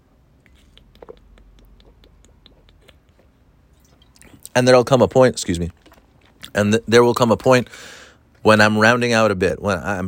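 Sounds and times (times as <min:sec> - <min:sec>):
person sipping water: 0:00.4 - 0:04.6, 0:05.7 - 0:06.6
speech: 0:04.5 - 0:05.8, 0:06.6 - 0:10.0.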